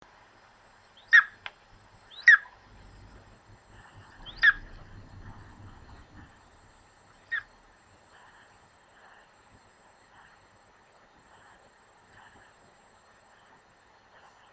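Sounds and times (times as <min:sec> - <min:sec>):
low rumbling background noise: 0:00.0 - 0:14.5
Golden eagle giving sharp high yelps: 0:01.0 - 0:01.4, 0:02.1 - 0:02.8, 0:04.0 - 0:05.0, 0:07.2 - 0:07.6.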